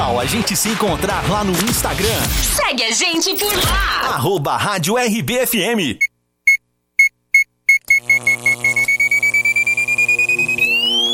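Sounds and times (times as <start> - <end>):
speech: 0.2 - 6.1
stopwatch timer electronic beeps: 6.0 - 11.1.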